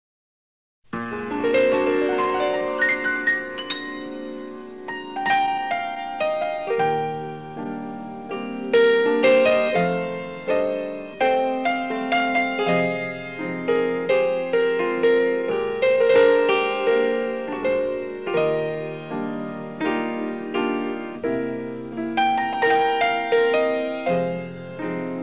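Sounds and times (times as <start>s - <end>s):
piano and orchestra: 1.0s - 25.2s.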